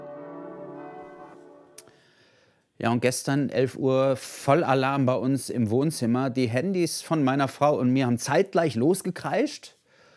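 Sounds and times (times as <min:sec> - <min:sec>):
church bells ringing for a memorial service: 0:00.0 - 0:01.8
speech: 0:02.8 - 0:09.8.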